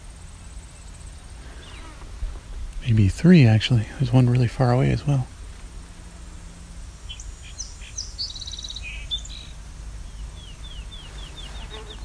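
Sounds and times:
low rumble: 0.0 - 12.0
speech: 2.9 - 5.3
song sparrow singing trills and notes outdoors: 6.5 - 12.0.

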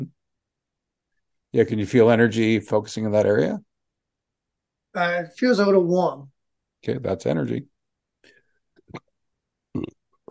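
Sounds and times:
speech: 1.5 - 3.7, 5.0 - 9.0, 9.8 - 10.2
person belching during an energy-healing session: 9.7 - 10.2.

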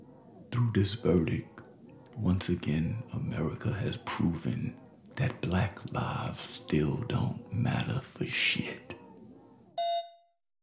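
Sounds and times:
speech: 0.6 - 1.6, 2.2 - 8.9
throw line telephone ringing electronically in the main bar area: 9.8 - 10.2.

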